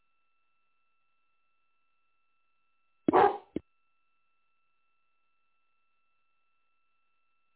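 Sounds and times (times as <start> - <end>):
dog barking excitedly at a garbage truck: 3.1 - 3.6.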